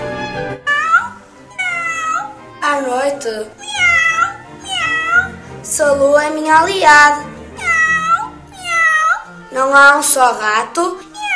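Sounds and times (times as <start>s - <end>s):
cat meowing: 0.7s - 2.4s, 3.4s - 5.4s, 7.6s - 9.3s, 11.0s - 11.3s
speech: 2.8s - 3.8s, 5.7s - 7.3s, 9.5s - 11.1s.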